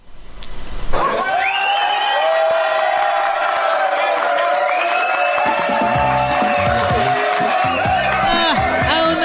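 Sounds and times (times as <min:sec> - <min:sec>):
audience applause: 0:01.0 - 0:09.2.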